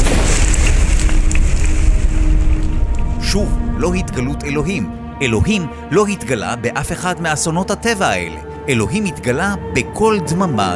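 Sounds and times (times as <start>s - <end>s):
fire roaring with crackles and pops: 0.0s - 4.3s
speech: 3.3s - 10.7s.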